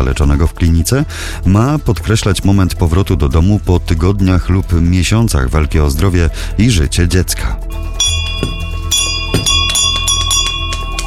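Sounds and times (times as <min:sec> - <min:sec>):
speech: 0:00.0 - 0:08.5
victory bell ringing on hospital ward: 0:08.0 - 0:11.0.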